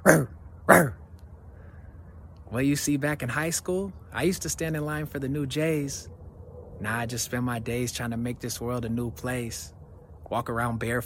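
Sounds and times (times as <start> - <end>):
person barking like a dog: 0.0 - 1.0
speech: 0.1 - 1.0, 2.5 - 6.2, 6.8 - 11.0.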